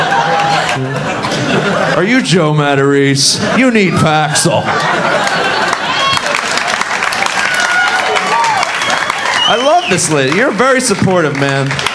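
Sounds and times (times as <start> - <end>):
audience applause: 0.0 - 1.0, 4.7 - 11.9
crowd cheering: 0.0 - 2.1, 3.5 - 11.9
crowd laughter: 0.0 - 2.3, 3.2 - 7.1
speech: 2.0 - 5.7, 9.5 - 11.9.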